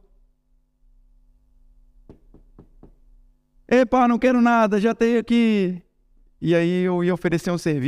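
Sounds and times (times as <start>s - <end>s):
steady low electrical hum: 0.0s - 7.8s
sharp knocks on a door: 2.0s - 3.2s
speech: 3.7s - 5.8s, 6.4s - 7.8s.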